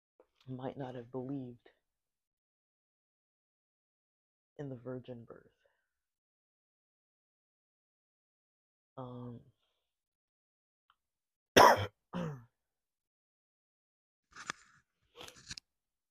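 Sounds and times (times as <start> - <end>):
speech: 0.5 - 1.8, 4.6 - 5.6, 9.0 - 9.5
person coughing: 11.6 - 12.4.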